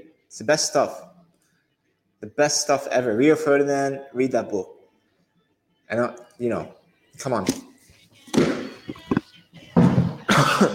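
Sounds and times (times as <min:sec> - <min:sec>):
speech: 0:00.3 - 0:01.1, 0:02.2 - 0:04.8, 0:05.9 - 0:07.7
harsh coughing: 0:10.3 - 0:10.7.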